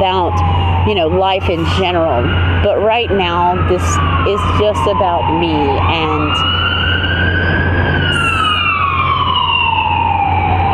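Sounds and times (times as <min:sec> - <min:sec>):
speech: 0:00.0 - 0:06.7
ambulance engine rumble: 0:00.0 - 0:10.7
ambulance siren wailing: 0:00.0 - 0:10.7.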